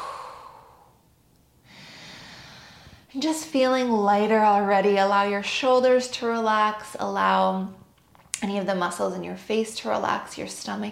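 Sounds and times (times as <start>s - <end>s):
steady breathy inhalation: 0.0s - 0.9s, 1.6s - 3.1s
deep exhale released after holding the breath in a breathing exercise: 0.0s - 1.0s, 1.6s - 3.1s
speech: 3.1s - 7.8s, 8.4s - 10.9s.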